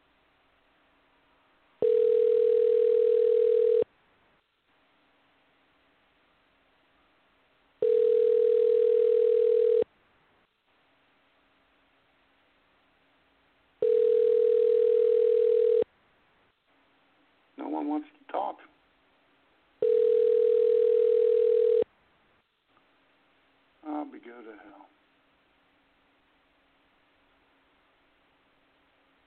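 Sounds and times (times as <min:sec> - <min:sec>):
buzzy telephone line tone while a call is dialed: 0:01.8 - 0:03.9, 0:07.8 - 0:09.9, 0:13.8 - 0:15.9, 0:19.8 - 0:21.9.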